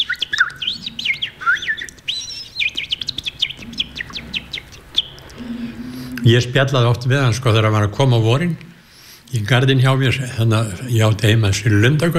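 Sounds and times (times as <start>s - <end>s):
human imitation of a thrush's song: 0.0s - 6.5s
speech: 6.2s - 8.7s, 9.3s - 12.1s.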